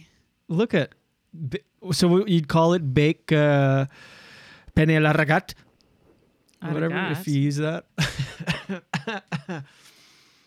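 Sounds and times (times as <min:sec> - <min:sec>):
speech: 0:00.5 - 0:04.2, 0:04.8 - 0:05.6, 0:06.6 - 0:09.9
person coughing from a lingering cough: 0:08.0 - 0:09.7.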